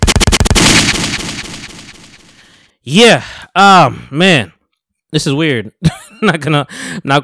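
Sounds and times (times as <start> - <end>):
gunshots: 0.0 - 2.5
sustained rumbling echo of gunshots: 0.0 - 2.5
speech: 2.8 - 7.2.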